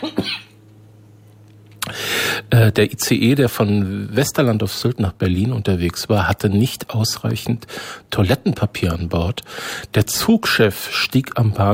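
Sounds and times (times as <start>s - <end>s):
person coughing: 0.0s - 0.5s
steady low hum: 0.0s - 11.7s
speech: 2.5s - 11.7s.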